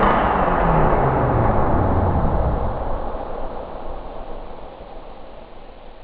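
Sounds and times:
explosion: 0:00.0 - 0:04.1.

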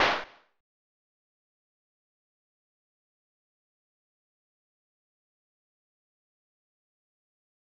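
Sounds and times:
gunshot: 0:00.0 - 0:00.4.

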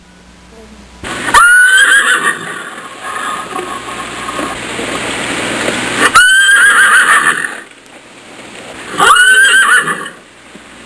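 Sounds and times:
horse whinnying: 0:01.3 - 0:03.9, 0:06.0 - 0:07.7, 0:08.9 - 0:10.2.

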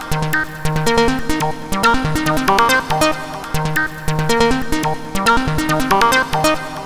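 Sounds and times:
techno melody: 0:00.0 - 0:06.8.

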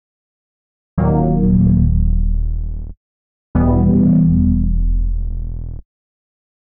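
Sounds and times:
synthesizer chord bass: 0:01.0 - 0:03.0, 0:03.6 - 0:05.8.

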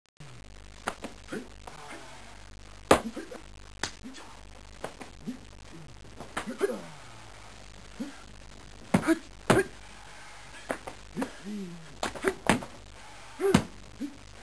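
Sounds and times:
karate sparring match: 0:02.9 - 0:04.0, 0:06.2 - 0:06.8, 0:08.9 - 0:09.8, 0:10.6 - 0:12.8, 0:13.4 - 0:13.8.

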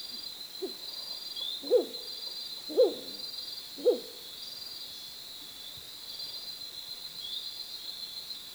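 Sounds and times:
bird hooting: 0:01.6 - 0:02.0, 0:02.7 - 0:03.2, 0:03.8 - 0:04.2.

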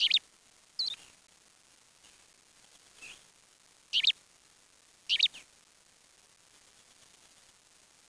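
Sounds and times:
short high double-peaked bird chirps: 0:00.0 - 0:00.2, 0:00.8 - 0:01.0, 0:05.1 - 0:05.4.

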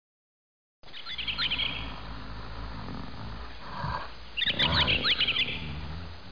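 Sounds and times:
talking bird chirping: 0:00.8 - 0:02.6, 0:04.4 - 0:06.0.

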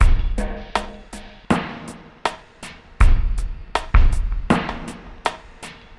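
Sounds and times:
ambient drum loop: 0:00.0 - 0:05.9.

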